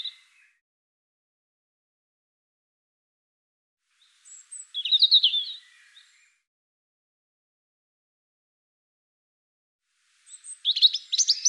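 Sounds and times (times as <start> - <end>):
European robin twittering and trilling: 4.0 - 6.4, 10.2 - 11.4.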